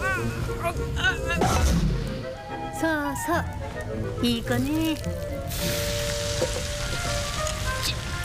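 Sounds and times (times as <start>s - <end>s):
speech: 0.2s - 6.7s
bacon sizzling and frying in a pan: 4.6s - 8.1s.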